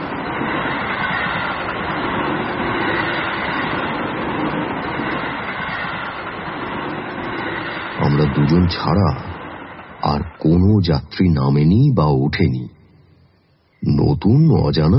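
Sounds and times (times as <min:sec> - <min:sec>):
passenger train pulling out of a station, rumbling and rattling: 0:00.0 - 0:11.7
speech: 0:08.5 - 0:09.3, 0:10.4 - 0:12.8, 0:13.8 - 0:14.9.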